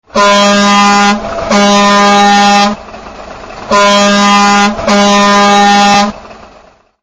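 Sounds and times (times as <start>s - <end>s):
truck horn: 0.1s - 2.9s, 3.7s - 6.4s.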